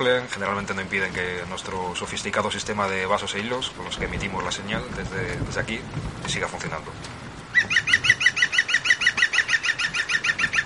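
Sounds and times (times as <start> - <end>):
speech: 0.0 - 7.2
bird squawking from the top of a tree in stormy weather: 7.5 - 10.6.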